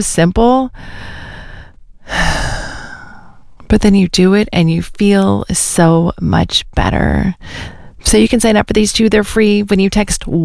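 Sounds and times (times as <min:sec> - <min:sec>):
speech: 0:00.0 - 0:01.2, 0:02.1 - 0:02.5, 0:03.7 - 0:10.4
deep breath: 0:00.8 - 0:03.6, 0:07.4 - 0:08.0.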